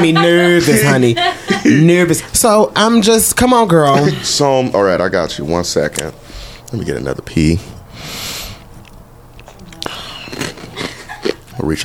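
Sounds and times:
laughter: 0:00.0 - 0:02.4, 0:03.7 - 0:04.7, 0:10.4 - 0:11.8
speech: 0:00.0 - 0:07.8, 0:11.6 - 0:11.8
wet crunchy chewing with mouth noises: 0:08.5 - 0:11.8.

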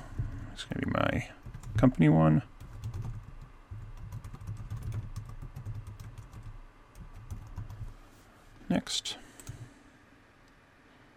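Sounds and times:
low steady hum: 0:00.0 - 0:11.1
speech: 0:00.6 - 0:02.5
email address typed on a computer keyboard: 0:01.4 - 0:01.9, 0:02.6 - 0:07.9.

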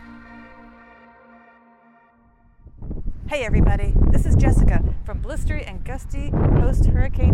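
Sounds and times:
electronic alarm tone: 0:00.0 - 0:02.7
speech: 0:03.3 - 0:07.3.

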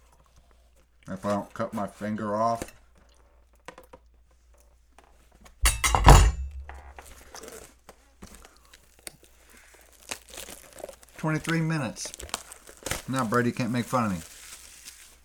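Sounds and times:
speech: 0:01.1 - 0:02.8, 0:11.2 - 0:12.4, 0:13.1 - 0:14.3
sports card pack wrapper crinkling and rustling: 0:06.6 - 0:15.2
sports card pack wrapper being torn open: 0:08.8 - 0:15.2.

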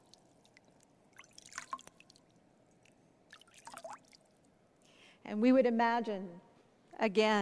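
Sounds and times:
water trickling and splashing: 0:00.0 - 0:04.5
low steady wash: 0:00.0 - 0:07.0
speech: 0:05.2 - 0:06.4, 0:07.0 - 0:07.3.

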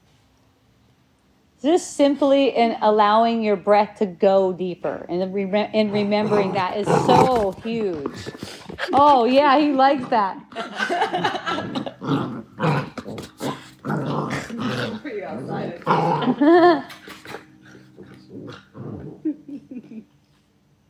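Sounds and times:
speech: 0:01.6 - 0:12.8, 0:15.3 - 0:16.9
puppy growling and yipping: 0:06.0 - 0:09.0, 0:11.3 - 0:19.5
laughter: 0:10.5 - 0:12.0, 0:16.2 - 0:17.2, 0:19.2 - 0:20.1.

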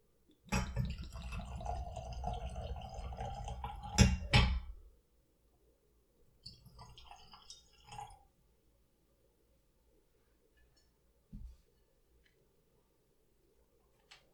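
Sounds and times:
whiskey glugging and splashing into a glass from a freshly opened bottle: 0:00.5 - 0:04.7, 0:06.5 - 0:08.2.

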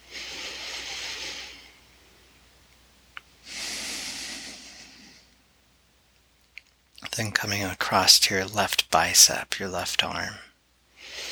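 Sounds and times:
slow airy breath in through the nose during guided relaxation: 0:00.0 - 0:01.8, 0:03.4 - 0:05.3, 0:11.0 - 0:11.3
speech: 0:07.2 - 0:10.5.

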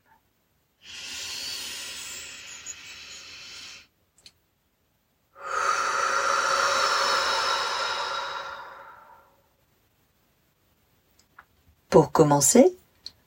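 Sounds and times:
deep breaths in through the nose and out through the mouth: 0:00.8 - 0:03.9, 0:05.4 - 0:09.5
speech: 0:11.9 - 0:12.8.

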